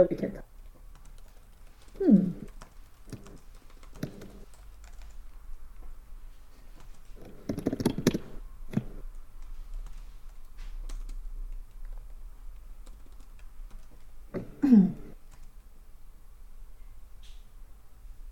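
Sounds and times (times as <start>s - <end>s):
speech: 0.0s - 0.5s, 2.0s - 2.4s
low steady hum: 0.0s - 18.3s
typing on a computer keyboard: 0.6s - 5.4s, 6.8s - 14.2s, 15.3s - 15.7s.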